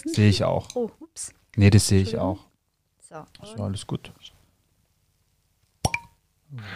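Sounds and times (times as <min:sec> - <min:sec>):
speech: 0:00.0 - 0:02.5, 0:03.1 - 0:04.4, 0:06.5 - 0:06.7
cork popping out of a bottle: 0:05.8 - 0:06.2.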